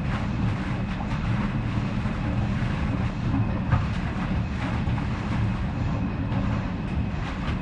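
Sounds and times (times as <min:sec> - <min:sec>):
pipe in swampland: 0:00.0 - 0:07.5.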